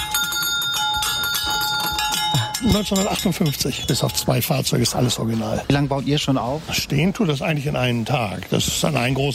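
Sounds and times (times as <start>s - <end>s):
original 1950s fire engine bell on a carousel ringing: 0.0s - 4.8s
speech: 2.6s - 9.3s.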